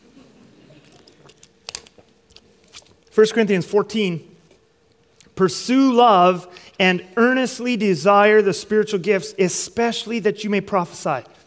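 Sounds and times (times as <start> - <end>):
person sipping water: 0.6 - 3.2, 4.4 - 5.4
soft wet mouth clicks: 0.8 - 3.1
speech: 3.2 - 4.3, 5.4 - 11.4.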